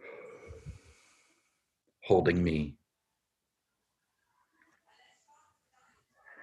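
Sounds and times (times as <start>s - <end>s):
slow exhale during guided breathing meditation: 0.0s - 1.6s
speech: 2.1s - 2.8s.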